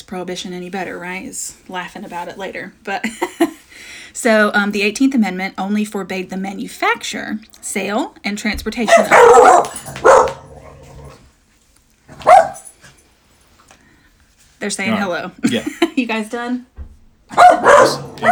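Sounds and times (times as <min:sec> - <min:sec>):
speech: 0:00.1 - 0:03.5, 0:04.1 - 0:10.2, 0:14.6 - 0:16.7, 0:17.3 - 0:18.3
dogs barking: 0:08.8 - 0:11.2, 0:12.1 - 0:12.9, 0:17.3 - 0:18.3.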